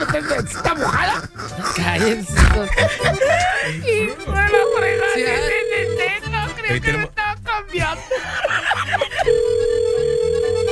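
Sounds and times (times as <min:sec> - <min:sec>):
laughter: 0:00.0 - 0:05.3, 0:07.8 - 0:09.6
speech: 0:00.1 - 0:06.0
telephone ringing: 0:04.5 - 0:06.4, 0:09.2 - 0:10.6.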